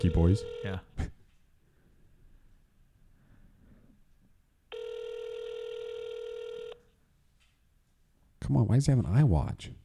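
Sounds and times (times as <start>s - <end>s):
telephone ringing with a loud steady electronic tone: 0.0s - 0.9s, 4.7s - 6.8s
speech: 0.0s - 1.1s, 8.5s - 9.8s
quiet hum: 0.0s - 8.2s.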